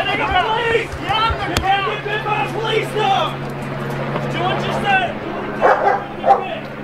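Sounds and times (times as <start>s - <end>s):
steady low hum: 0.0s - 6.8s
police dog barking and yipping excitedly: 5.6s - 6.6s.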